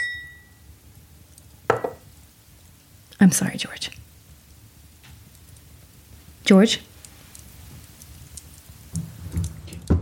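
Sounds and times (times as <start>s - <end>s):
faint ringing glass tone: 0.0s - 0.6s
speech: 3.2s - 4.1s, 6.5s - 6.9s.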